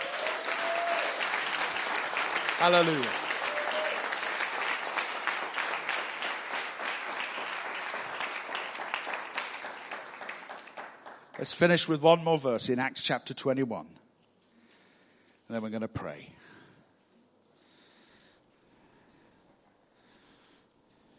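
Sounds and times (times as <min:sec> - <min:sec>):
large crowd applauding: 0:00.0 - 0:12.1
speech: 0:02.6 - 0:03.2, 0:11.4 - 0:14.0, 0:15.5 - 0:16.5.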